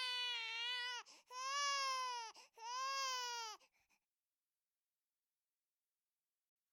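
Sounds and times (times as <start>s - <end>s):
newborn baby crying: 0.0s - 3.6s.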